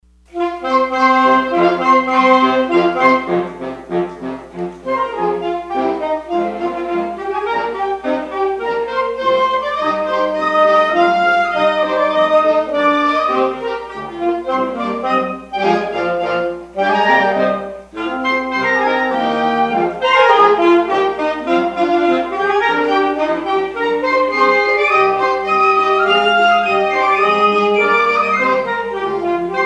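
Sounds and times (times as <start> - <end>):
English folk music suite: 0.2 - 29.6.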